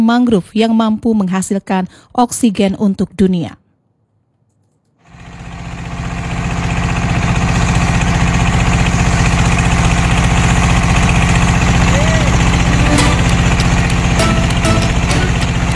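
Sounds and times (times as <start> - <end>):
speech: 0.0 - 3.6
small ketek river motorboat engine chugging on a river trip: 5.2 - 15.7.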